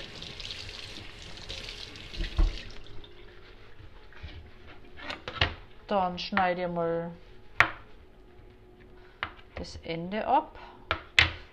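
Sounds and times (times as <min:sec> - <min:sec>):
tap water running into a sink: 0:00.0 - 0:03.2
speech: 0:05.9 - 0:07.3, 0:09.6 - 0:10.6.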